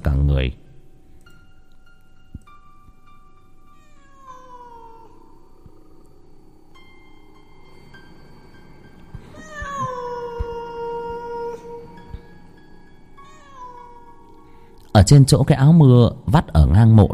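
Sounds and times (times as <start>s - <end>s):
speech: 0.0s - 0.6s, 15.0s - 17.1s
large black cat meowing in a graveyard: 3.7s - 5.4s, 9.3s - 12.3s, 13.2s - 14.4s.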